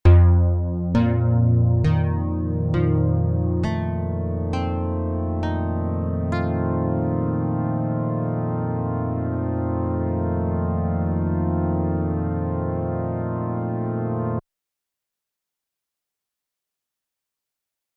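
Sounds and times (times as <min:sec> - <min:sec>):
synthesizer in unison mode: 0:00.0 - 0:14.4.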